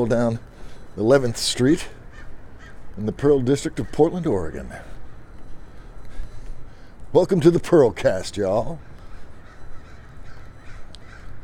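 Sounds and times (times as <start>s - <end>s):
speech: 0.0s - 2.0s, 3.0s - 5.0s, 7.1s - 8.9s
steady noise: 0.0s - 11.4s
crows cawing while flying over a city street: 1.8s - 7.0s, 8.6s - 11.4s.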